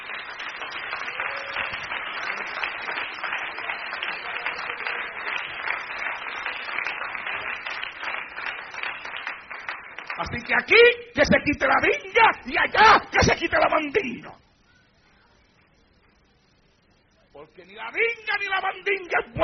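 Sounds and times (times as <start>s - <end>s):
audience applauding at a religious gathering: 0.0s - 10.6s
speech: 10.2s - 14.4s, 17.6s - 19.4s.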